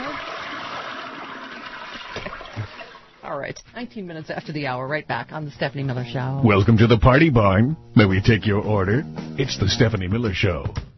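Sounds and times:
toilet flushing with rushing, gurgling water: 0.0 - 3.3
speech: 3.3 - 10.9.

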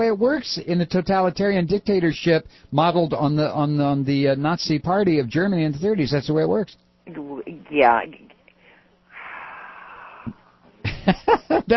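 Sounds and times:
speech: 0.0 - 8.2, 10.3 - 11.7
person taking a deep breath: 8.6 - 10.6.

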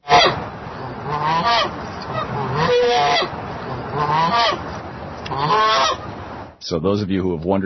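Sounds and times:
goose honking agitatedly: 0.0 - 6.1
speech: 6.7 - 7.6.

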